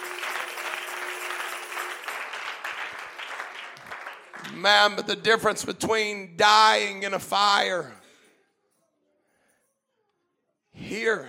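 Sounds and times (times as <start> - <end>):
congregation clapping hands at a worship service: 0.0 - 5.5
speech: 4.5 - 8.0, 11.0 - 11.2.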